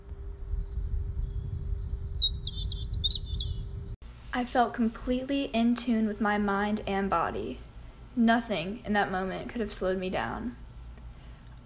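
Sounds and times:
steady low rumble: 0.0 - 4.0
faint constant hum: 0.0 - 11.6
birds chirping in trees above a running course: 0.3 - 4.0
speech: 4.4 - 10.6.

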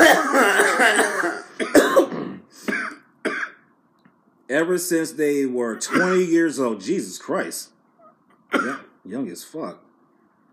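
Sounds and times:
long raspy coughing fit: 0.0 - 3.7, 5.8 - 6.3, 8.5 - 9.0
speech: 4.5 - 7.8, 8.5 - 9.8.

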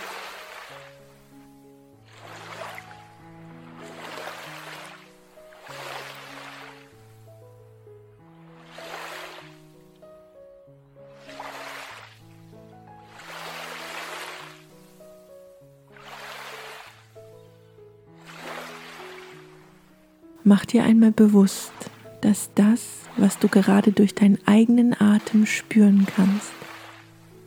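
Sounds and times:
gentle sustained meditation music with slowly shifting tones: 0.0 - 27.4
soft ocean waves washing in and out: 2.2 - 6.8, 8.7 - 9.4, 13.1 - 14.6, 16.0 - 16.8, 20.4 - 27.0
speech: 20.5 - 26.7.

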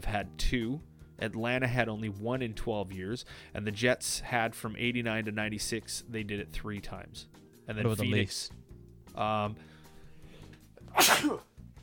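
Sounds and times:
speech: 0.0 - 8.6, 9.2 - 9.7, 10.9 - 11.5
sneeze: 10.9 - 11.5.

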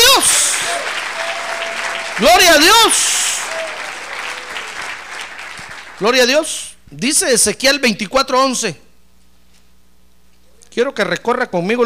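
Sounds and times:
congregation applauding: 0.0 - 6.7
speech: 2.2 - 3.2, 6.0 - 8.8, 10.8 - 11.8
man calling out loudly: 2.2 - 3.5.

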